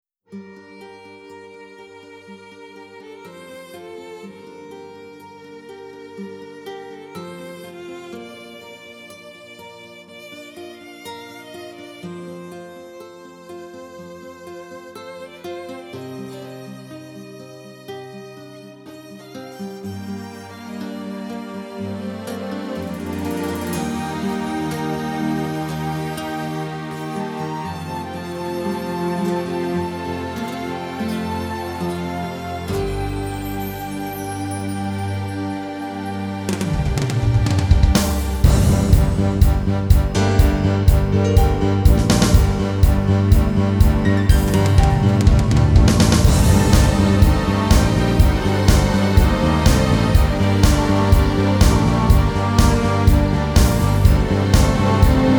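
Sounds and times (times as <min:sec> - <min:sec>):
piano playing: 0:22.8 - 0:36.8, 0:37.9 - 0:55.3.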